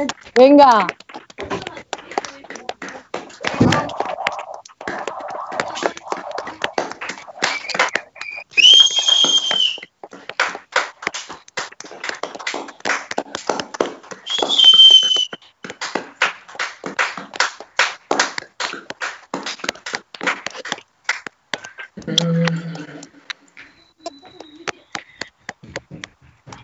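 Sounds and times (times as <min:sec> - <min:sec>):
speech: 0:00.0 - 0:01.0
hands clapping in live on-air applause: 0:00.0 - 0:22.6, 0:23.6 - 0:26.6
murmuring voices: 0:01.4 - 0:08.2
loud piercing whistle: 0:03.6 - 0:09.8, 0:14.3 - 0:15.4.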